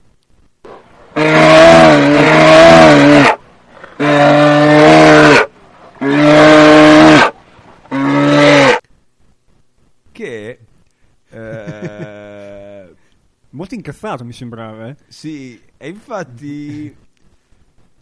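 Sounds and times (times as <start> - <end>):
angry moose bellowing: 0.7 - 8.8
speech: 13.8 - 17.0.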